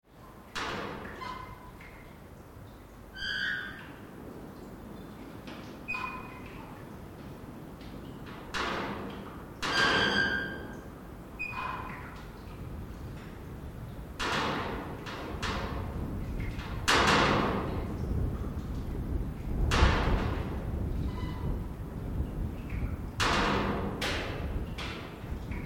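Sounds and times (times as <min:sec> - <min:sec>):
wind in a metal shed: 0:00.0 - 0:25.6
drips: 0:00.1 - 0:25.6
metal doors banging in the weather: 0:08.3 - 0:10.8, 0:14.2 - 0:17.9, 0:19.6 - 0:21.6, 0:23.2 - 0:25.2.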